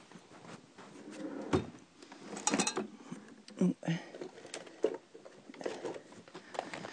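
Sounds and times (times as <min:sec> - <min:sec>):
bottom drawer sliding open: 0:00.9 - 0:02.9
rummaging through items in a drawer: 0:04.1 - 0:06.8.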